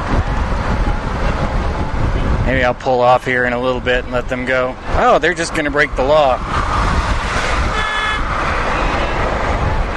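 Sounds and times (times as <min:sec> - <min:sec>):
road and engine noise: 0:00.0 - 0:09.9
speech: 0:02.5 - 0:06.7
car horn blaring: 0:07.6 - 0:09.2.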